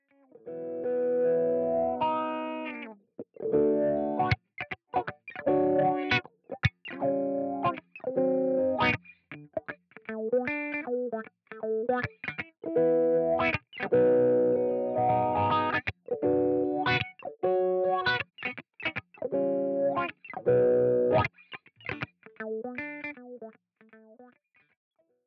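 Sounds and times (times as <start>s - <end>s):
wah guitar: 0.5s - 24.3s.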